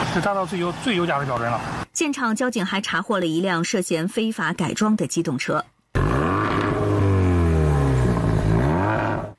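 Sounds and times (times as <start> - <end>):
speech: 0.1 - 6.1
unlicensed motorcycle engine revving: 6.0 - 9.3.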